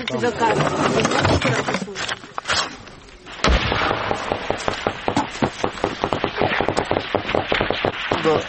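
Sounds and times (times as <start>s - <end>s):
speech: 0.1s - 2.1s
heavy boom: 3.4s - 8.3s
automatic weapon and machine gun fire in battle: 3.5s - 8.4s.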